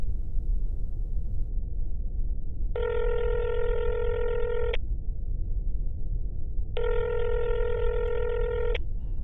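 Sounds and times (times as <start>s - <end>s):
constant low rumble: 0.0s - 9.2s
long steady electronic telephone tones of a phone being dialed: 2.8s - 4.8s, 6.8s - 8.8s.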